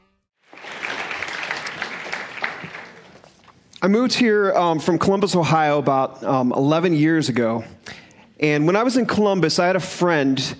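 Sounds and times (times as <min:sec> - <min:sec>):
audience applause: 0:00.4 - 0:03.4
speech: 0:03.8 - 0:10.5.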